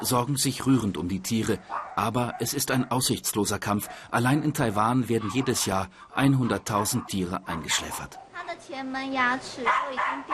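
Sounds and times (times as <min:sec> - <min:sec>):
speech: 0:00.0 - 0:10.3
dog barking and yipping with whimpering tones: 0:01.6 - 0:08.4, 0:09.6 - 0:10.3.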